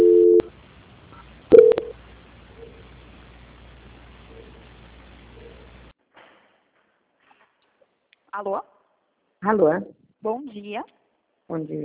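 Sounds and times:
telephone call transfer beeps: 0.0s - 0.5s, 1.5s - 1.9s
telephone call transfer tone: 0.0s - 0.5s, 1.2s - 1.9s
speech: 8.4s - 8.7s, 9.4s - 11.8s.

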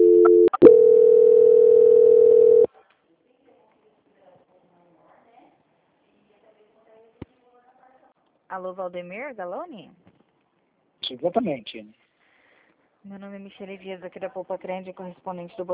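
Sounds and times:
telephone line tone during a call transfer: 0.0s - 2.7s
speech: 8.6s - 10.1s, 11.1s - 12.0s, 13.0s - 15.7s.

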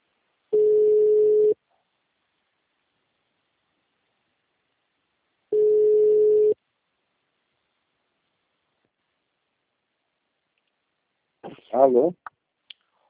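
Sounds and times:
telephone line tone while calling a client from a customer after-sales desk: 0.6s - 1.6s, 5.5s - 6.6s
speech: 11.8s - 12.4s.

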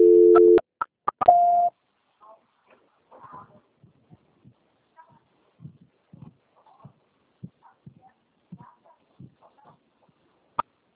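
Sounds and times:
telephone line tones during a call transfer: 0.0s - 0.6s.

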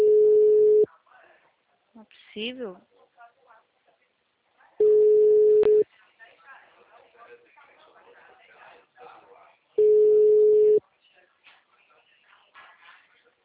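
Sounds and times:
telephone line tone after a dropped call: 0.0s - 0.9s, 4.8s - 5.8s, 9.8s - 10.8s
speech: 2.4s - 2.9s.

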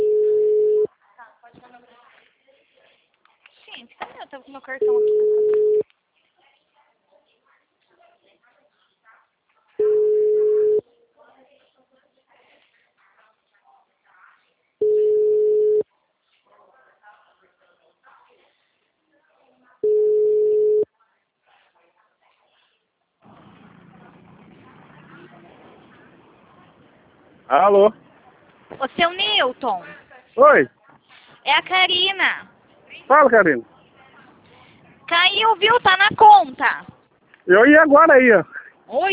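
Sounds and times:
ringback tone of an unanswered outgoing telephone call: 0.0s - 0.9s, 4.8s - 5.8s, 9.8s - 10.8s, 14.8s - 15.8s, 19.8s - 20.8s
faint sounds: 0.0s - 39.1s
speech: 4.6s - 5.4s, 27.6s - 28.0s, 28.8s - 30.8s, 31.4s - 32.5s, 33.1s - 33.7s, 35.1s - 36.9s, 37.5s - 39.1s.

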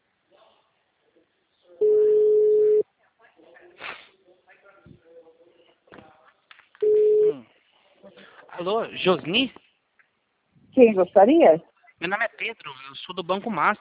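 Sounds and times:
ringback tone on an outgoing phone call: 1.8s - 2.8s
speech: 8.6s - 9.6s, 10.8s - 13.7s.

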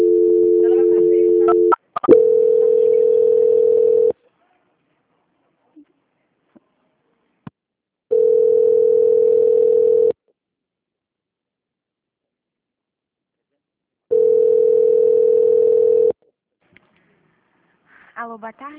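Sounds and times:
telephone tone while a bank's quality-control call is being transferred: 0.0s - 4.1s, 8.1s - 10.2s, 14.1s - 16.2s.

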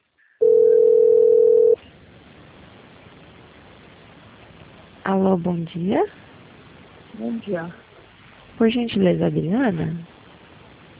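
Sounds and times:
faint telephone line hiss: 0.0s - 10.9s
telephone ringback tone: 0.4s - 1.8s
speech: 5.1s - 6.3s, 7.2s - 7.8s, 8.6s - 10.1s.

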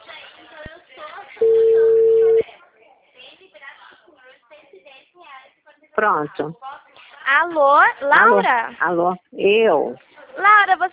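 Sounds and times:
telephone tone while a call connects: 1.4s - 2.4s
speech: 6.0s - 6.7s, 7.3s - 10.9s.

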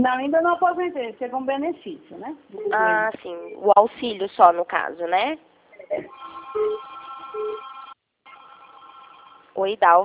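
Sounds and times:
speech: 0.0s - 7.7s, 9.6s - 10.0s
telephone ringing with an incoming call: 6.1s - 9.6s.

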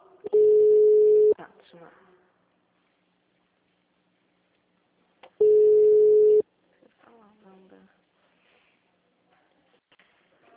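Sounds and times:
telephone busy tone after a dropped call: 0.3s - 1.4s, 5.4s - 6.4s.

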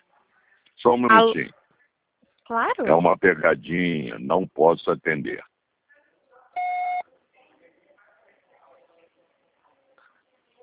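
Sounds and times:
speech: 0.8s - 1.6s, 2.5s - 5.5s
voicemail beep: 6.6s - 7.0s.

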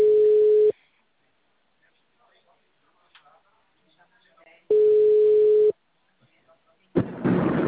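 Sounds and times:
telephone busy tone after a dropped call: 0.0s - 0.7s, 4.7s - 5.7s
burst of broadband noise: 7.0s - 7.6s.

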